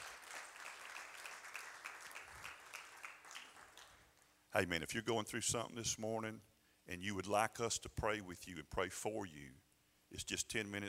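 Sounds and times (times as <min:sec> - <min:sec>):
audience clapping hands in praise: 0:00.0 - 0:04.1
speech: 0:04.5 - 0:10.8.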